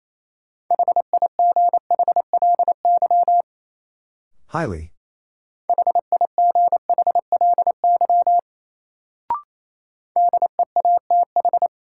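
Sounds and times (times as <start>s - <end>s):
fast Morse code beeps at 28 words per minute: 0.7s - 3.4s, 5.7s - 8.4s, 10.2s - 11.7s
speech: 4.5s - 5.0s.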